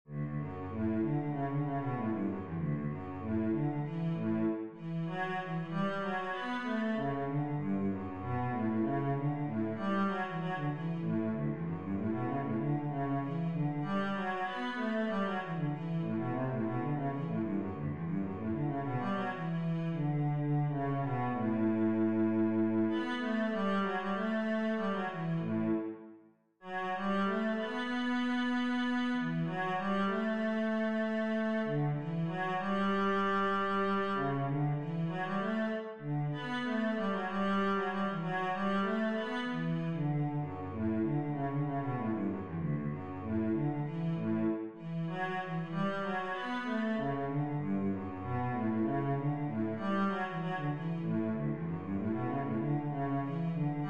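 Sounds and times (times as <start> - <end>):
cello: 0.0 - 53.8.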